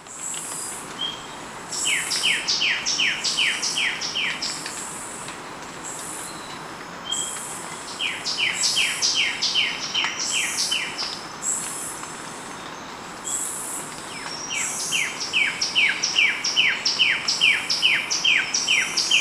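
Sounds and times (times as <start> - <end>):
constant hiss: 0.0 - 19.1
sepia-brown wren calling in Ecuador: 1.7 - 4.6, 7.9 - 11.7, 14.2 - 19.1.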